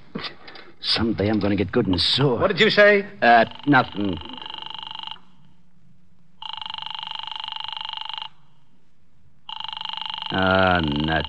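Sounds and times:
speech: 0:00.8 - 0:04.3, 0:10.4 - 0:11.2
office telephone ringing unanswered: 0:03.2 - 0:05.6, 0:06.4 - 0:08.6, 0:09.4 - 0:11.2.

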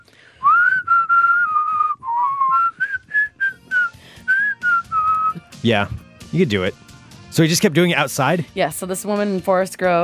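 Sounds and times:
person whistling a pop-style melody: 0:00.0 - 0:05.6
speech: 0:05.6 - 0:10.0.

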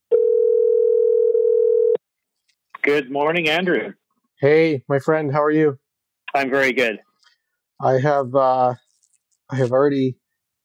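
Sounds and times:
telephone dial tone as a call is placed: 0:00.1 - 0:02.0
speech: 0:02.9 - 0:07.1, 0:07.8 - 0:08.8, 0:09.5 - 0:10.6.

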